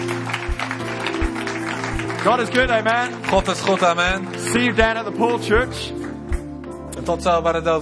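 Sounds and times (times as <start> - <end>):
audience applause: 0.0 - 5.2
speech: 2.2 - 6.0, 7.1 - 7.8.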